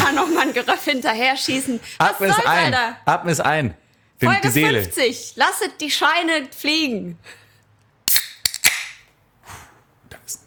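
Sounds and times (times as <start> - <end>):
fizzing hiss of opened beer can: 0.0 - 1.8
speech: 0.2 - 7.4
fresh beer can cracking open: 8.1 - 9.1.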